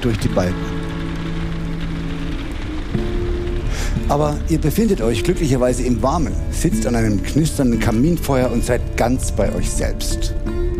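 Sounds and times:
speech: 0.0 - 0.8, 4.0 - 10.7
rain pattering against window panes in stormy weather: 0.0 - 10.7.

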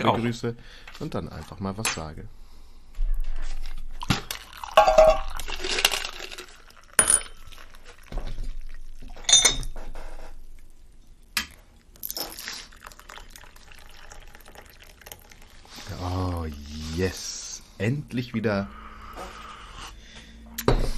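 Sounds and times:
speech: 0.0 - 2.4, 17.8 - 18.8
tea pouring into a glass: 4.0 - 9.3, 11.8 - 17.4
glass clinking: 4.1 - 7.8, 9.1 - 9.8.

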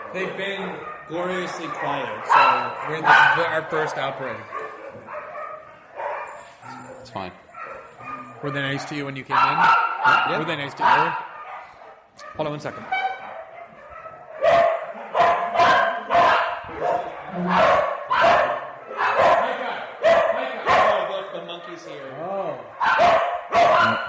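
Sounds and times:
dogs barking: 0.0 - 24.0
speech: 0.1 - 4.6, 7.0 - 7.5, 8.4 - 11.2, 12.4 - 13.0.

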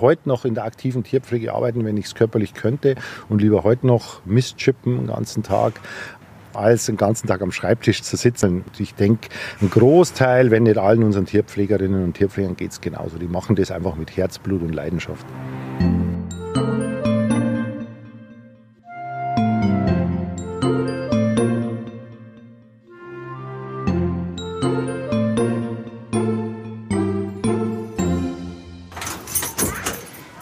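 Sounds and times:
speech: 0.0 - 16.0
tuneful musical passage: 15.2 - 29.3
keys jangling at a zoo: 28.9 - 30.4.

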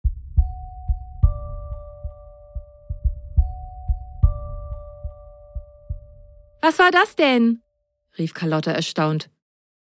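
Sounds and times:
steady low thumping pulse: 0.0 - 6.6
two-tone ding-dong doorbell chime: 0.4 - 6.2
speech: 6.6 - 7.6, 8.2 - 9.4.

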